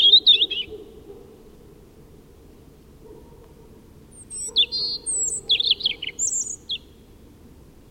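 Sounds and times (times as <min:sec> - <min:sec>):
European robin Erithacus rubecula singing: 0:00.0 - 0:00.8, 0:04.1 - 0:07.1.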